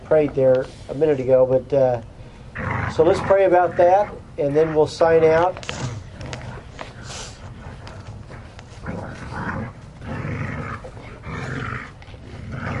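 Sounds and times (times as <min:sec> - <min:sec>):
speech: 0:00.1 - 0:02.1, 0:02.9 - 0:05.7
dogs growling and snarling while playing tug of war: 0:02.5 - 0:12.7.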